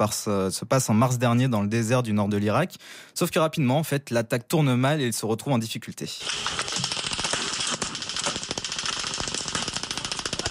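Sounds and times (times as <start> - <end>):
speech: 0.0 - 6.6
heavy gunfire from soldiers in a jeep during a desert attack in northern Iraq: 6.2 - 10.5.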